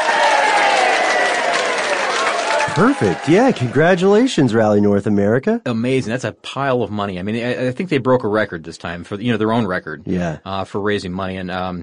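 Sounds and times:
applause sound effect: 0.0 - 4.6
speech: 2.8 - 11.8.

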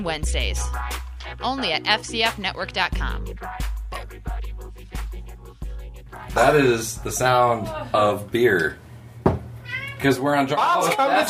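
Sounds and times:
speech: 0.0 - 4.6, 6.3 - 8.8, 10.0 - 11.2
cat meowing in a bar: 9.6 - 10.2.

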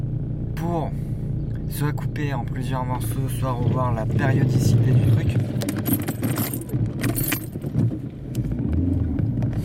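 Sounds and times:
speech: 0.6 - 6.5
car engine rumbling as it stalls: 3.3 - 9.6
keys jangling: 5.7 - 7.7.

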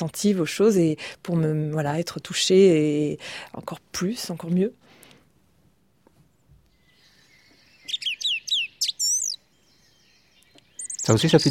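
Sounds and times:
speech: 0.0 - 4.8, 11.1 - 11.4
song thrush singing: 6.6 - 11.4.

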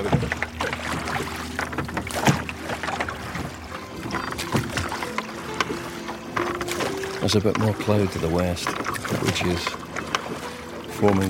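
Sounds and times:
oars rowing a boat through water with splash and creak: 0.0 - 11.2
speech: 7.3 - 9.8, 11.0 - 11.2.

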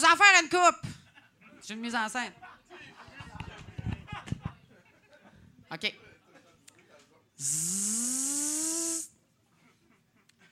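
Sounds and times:
speech: 0.4 - 0.9, 1.6 - 2.9, 5.7 - 6.1, 7.4 - 8.6
laughter: 1.0 - 5.6, 9.6 - 10.5
flies buzzing: 7.4 - 9.1.

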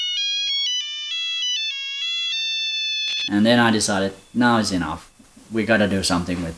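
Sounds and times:
mobile phone ringtone: 0.0 - 5.2
speech: 3.1 - 6.5.

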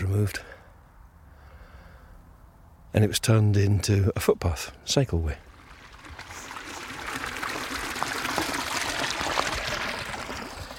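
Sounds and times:
speech: 0.1 - 0.6, 2.9 - 5.5
clear water pouring and splashing from an old pipe: 5.2 - 10.7.

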